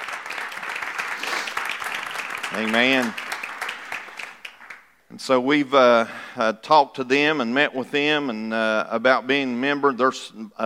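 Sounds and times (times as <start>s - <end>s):
church congregation clapping: 0.0s - 5.0s
speech: 2.6s - 3.2s, 5.1s - 10.6s.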